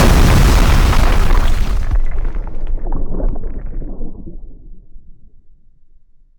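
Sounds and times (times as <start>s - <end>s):
huge explosion: 0.0s - 4.7s.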